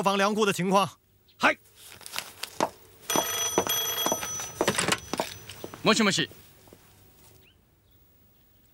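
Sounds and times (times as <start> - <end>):
speech: 0.0 - 2.0, 5.8 - 6.4
old-style telephone bell ringing with an incoming call: 3.1 - 5.9.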